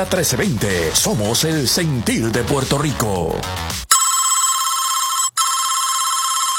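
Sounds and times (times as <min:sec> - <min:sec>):
speech: 0:00.0 - 0:03.8
telephone bell ringing: 0:03.9 - 0:06.5.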